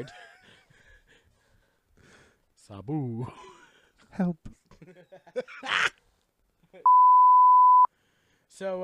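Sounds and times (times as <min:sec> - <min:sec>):
speech: 0:00.0 - 0:00.3, 0:02.7 - 0:03.5, 0:04.1 - 0:06.0, 0:06.7 - 0:07.4, 0:08.6 - 0:08.8
steady loud pure censor bleep tone: 0:06.9 - 0:07.9.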